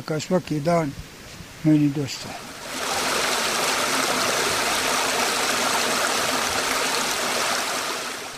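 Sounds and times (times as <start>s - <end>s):
speech: 0.0s - 2.5s
flowing stream water: 2.0s - 8.3s.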